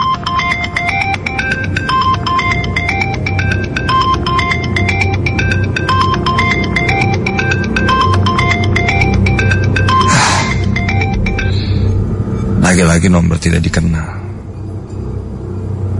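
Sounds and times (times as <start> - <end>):
mobile phone ringtone in a speeding car: 0.0 - 12.4
low rumble of a car speeding along an empty road: 9.2 - 15.9
speech: 12.8 - 14.2.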